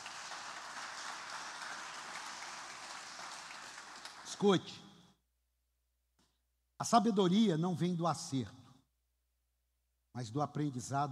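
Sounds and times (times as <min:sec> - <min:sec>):
crowd applauding: 0:00.0 - 0:04.8
speech: 0:04.3 - 0:04.9, 0:06.8 - 0:08.6, 0:10.2 - 0:11.1.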